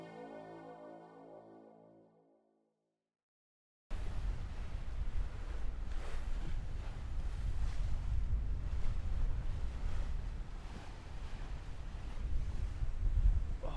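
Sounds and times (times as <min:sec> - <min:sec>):
wind at sea on the approach to Cape Horn: 0:03.9 - 0:13.7.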